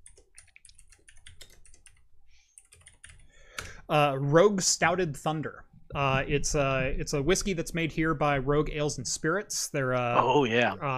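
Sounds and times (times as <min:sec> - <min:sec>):
rapid typing on a computer keyboard: 0:00.0 - 0:02.0, 0:02.6 - 0:03.7
speech: 0:03.9 - 0:10.9.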